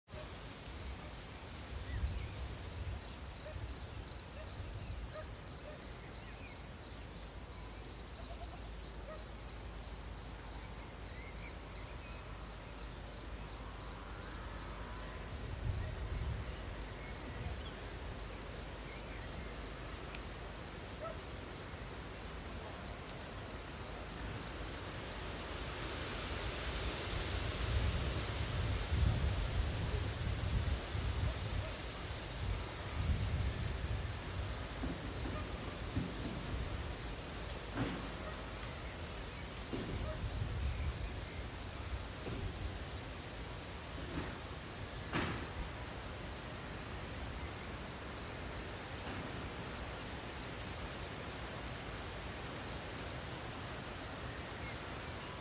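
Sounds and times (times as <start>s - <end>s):
crickets chirping: 0.1s - 55.4s
forest wind: 0.1s - 55.4s.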